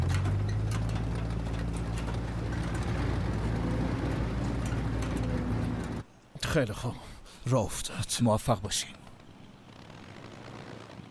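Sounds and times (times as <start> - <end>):
three-engine propeller airplane engine drone: 0.0 - 6.1, 8.4 - 11.0
speech: 6.5 - 9.0.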